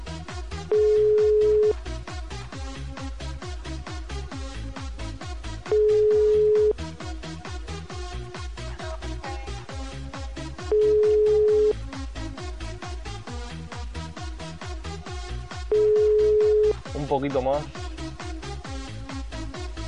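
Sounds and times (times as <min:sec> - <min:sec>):
fast regular thumping music beat: 0:00.0 - 0:19.8
telephone ringing with electronic tones: 0:00.7 - 0:01.8, 0:05.7 - 0:06.8, 0:10.7 - 0:11.8, 0:15.7 - 0:16.8.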